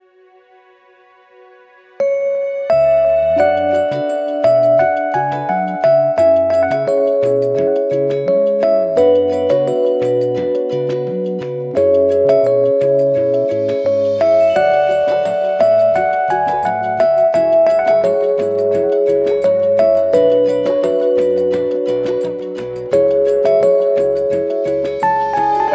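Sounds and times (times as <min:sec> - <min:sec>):
electric piano ringtone on Walton Primo-NF2-Plus phone: 0:02.0 - 0:25.7.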